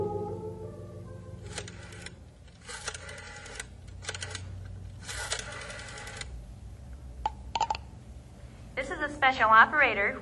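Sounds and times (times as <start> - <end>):
telephone dialing clicks: 1.5 - 6.3
person talking: 8.8 - 10.2.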